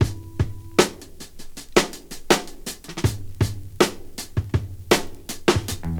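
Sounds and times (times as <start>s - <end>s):
80 bpm drum loop in G sharp: 0.0s - 5.9s.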